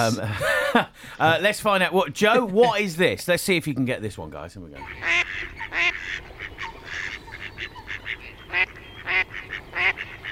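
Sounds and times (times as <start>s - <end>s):
speech: 0.0s - 6.3s
female mallard duck quacking: 4.8s - 10.3s.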